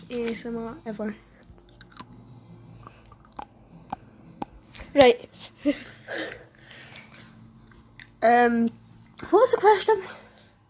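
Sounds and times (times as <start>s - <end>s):
hard Polo mint being chewed: 0.0s - 0.6s, 1.4s - 5.0s
speech: 0.1s - 1.3s, 5.0s - 6.4s, 8.2s - 10.2s.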